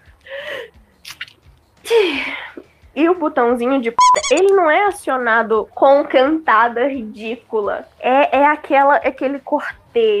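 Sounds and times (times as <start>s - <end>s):
breathy catching inhales: 0.3s - 0.8s
speech: 3.0s - 10.1s.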